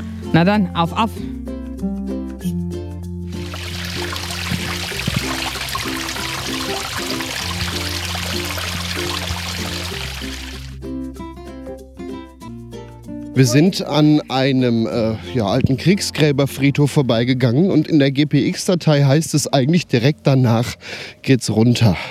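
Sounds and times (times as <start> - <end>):
soft musical backdrop: 0.0 - 20.8
speech: 0.3 - 2.0, 13.4 - 22.0
babbling brook in a side valley: 3.4 - 10.7.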